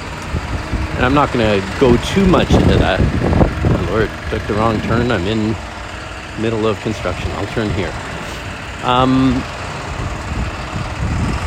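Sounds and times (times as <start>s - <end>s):
cars idling at a pedestrian crosswalk: 0.0s - 11.4s
speech: 1.0s - 5.7s, 6.4s - 8.0s, 8.8s - 9.6s.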